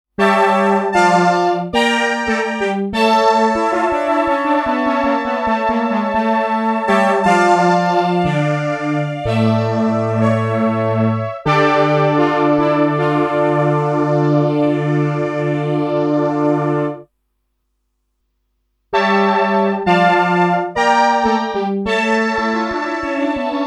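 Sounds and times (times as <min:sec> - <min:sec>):
brass sound on a Korg PE2000 synthesizer: 0:00.2 - 0:17.1, 0:18.9 - 0:23.6.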